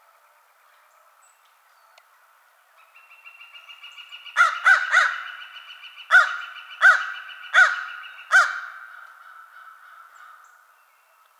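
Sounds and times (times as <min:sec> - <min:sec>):
American crow cawing: 0:04.4 - 0:10.7.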